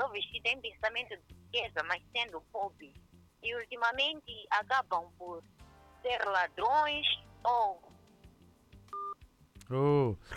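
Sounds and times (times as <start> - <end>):
speech: 0.2 - 7.9, 9.7 - 10.3
telephone keypad dialing tone while a caller is being rung: 8.9 - 9.2.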